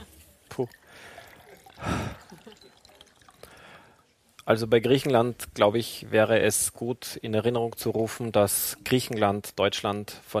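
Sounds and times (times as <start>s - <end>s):
drink pouring into a glass: 0.5s - 4.0s
speech: 0.6s - 1.2s, 4.5s - 10.3s.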